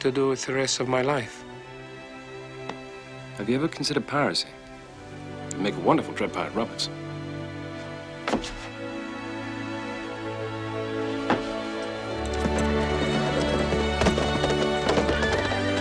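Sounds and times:
speech: 0.0 - 1.6, 3.4 - 4.6, 5.6 - 7.0
orchestral score: 0.0 - 15.7
horses' hooves clip-clopping at a gallop: 10.2 - 15.7.

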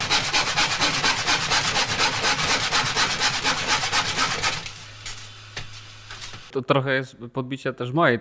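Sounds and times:
hand saw cutting a wooden board: 0.0 - 4.8
speech: 6.6 - 8.1.

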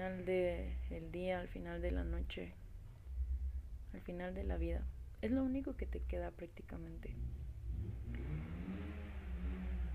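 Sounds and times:
speech: 0.0 - 2.6, 3.9 - 8.2
car engine revving with heavy low rumble: 7.2 - 9.9.

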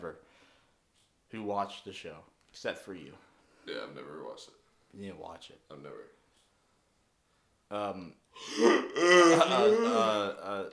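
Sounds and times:
speech: 0.0 - 0.3, 1.3 - 6.2, 7.7 - 10.7
loud drawn-out yawn: 8.4 - 10.2.

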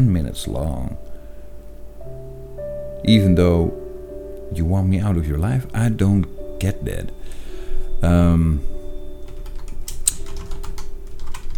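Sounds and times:
speech: 0.0 - 1.1, 3.0 - 3.8, 4.5 - 7.4, 8.0 - 8.8
typing on a computer keyboard: 9.3 - 11.5.

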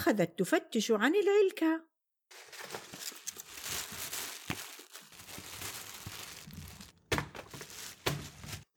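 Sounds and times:
speech: 0.1 - 2.7
plastic shopping bag crinkling and rustling: 2.3 - 8.6
groceries thunking as they are pulled out: 2.3 - 8.7.

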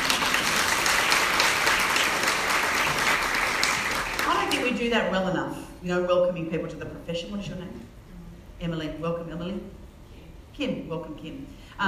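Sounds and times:
room full of people applauding: 0.0 - 4.6
speech: 4.8 - 8.0, 8.6 - 9.8, 10.6 - 11.8.

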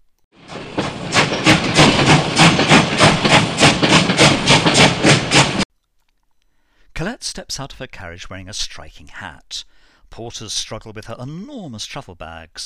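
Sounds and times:
steam train arriving at a station chuffing: 0.4 - 5.7
speech: 7.2 - 12.6.

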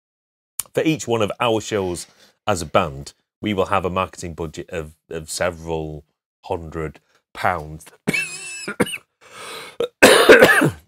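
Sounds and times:
speech: 0.8 - 8.9, 10.6 - 10.8
person coughing harshly: 8.1 - 10.8
raspy breath: 9.2 - 9.8
throat clearing: 9.8 - 10.8.

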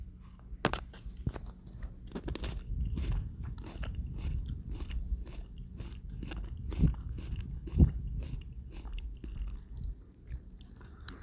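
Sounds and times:
crunchy biting and chewing of a small snack tomato: 0.6 - 11.2.

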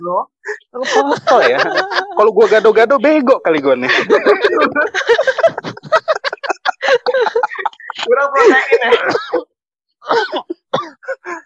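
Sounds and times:
speech: 0.0 - 5.7, 8.1 - 9.5
laughter: 0.8 - 9.2
person coughing: 6.8 - 11.4
person clearing throat: 7.9 - 11.2.

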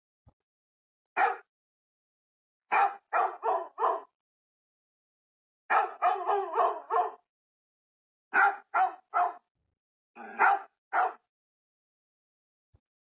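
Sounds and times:
dog barking: 1.2 - 1.5, 2.7 - 4.2, 5.7 - 7.3, 8.3 - 9.5, 10.2 - 11.3.

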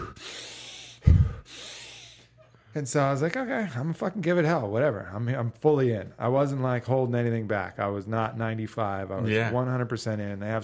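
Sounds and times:
forceful inhale through the nose: 0.0 - 2.4
huff of air: 0.0 - 2.6
speech: 2.8 - 10.6.

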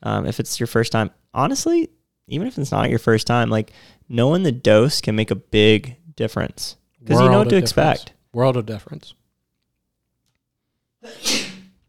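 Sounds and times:
speech: 0.0 - 9.2, 11.0 - 11.4
person sneezing: 11.0 - 11.7.

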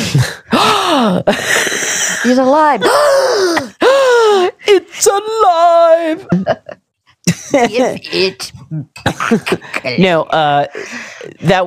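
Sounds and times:
person gasping: 0.0 - 4.8, 10.7 - 11.4
speech: 1.2 - 1.5, 2.2 - 3.7, 5.0 - 6.8, 7.4 - 11.6.

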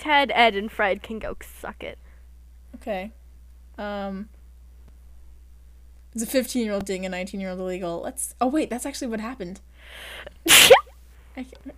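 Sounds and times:
speech: 0.0 - 2.0, 2.8 - 3.2, 3.8 - 4.4, 6.1 - 10.8, 11.4 - 11.7
sneeze: 10.5 - 11.0.

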